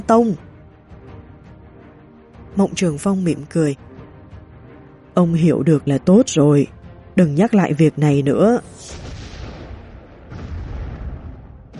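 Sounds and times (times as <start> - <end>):
speech: 0.0 - 0.4, 2.6 - 3.8, 5.2 - 9.0
deafening explosion outside: 8.8 - 11.7.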